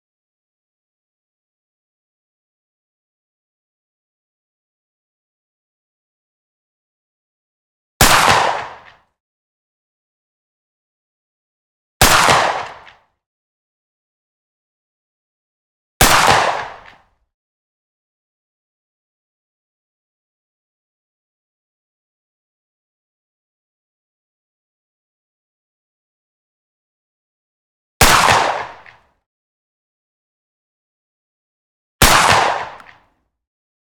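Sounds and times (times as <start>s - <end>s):
Saiga 12 firing 12g solid slug single shots: 8.0s - 9.0s, 12.0s - 13.0s, 16.0s - 17.0s, 28.0s - 29.0s, 32.0s - 33.1s.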